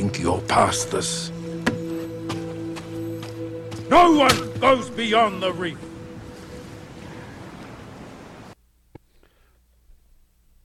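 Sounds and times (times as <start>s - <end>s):
speech: 0.1s - 1.4s, 3.9s - 5.9s
loud rushing ocean waves roaring around a small boat: 1.3s - 8.6s.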